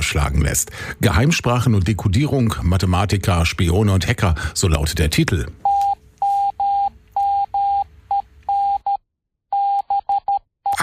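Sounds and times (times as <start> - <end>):
speech: 0.1 - 5.7
Morse code beeps: 5.6 - 10.8.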